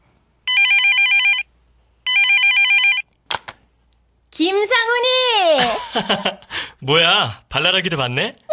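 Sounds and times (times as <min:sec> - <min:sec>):
mobile phone ringtone for an incoming call: 0:00.5 - 0:01.5, 0:02.1 - 0:03.1
speech: 0:04.4 - 0:08.4.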